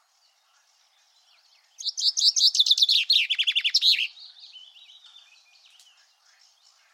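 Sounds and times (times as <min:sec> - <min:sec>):
common chaffinch singing: 0:00.0 - 0:06.9
soft bird twittering: 0:00.0 - 0:06.9.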